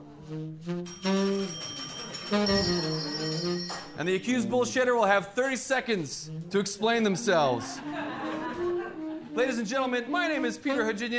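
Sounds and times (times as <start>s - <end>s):
speech: 0.3s - 8.3s, 9.4s - 11.1s
bell rung by an audience member at a live talk show: 0.9s - 4.2s
laughter: 7.4s - 9.3s.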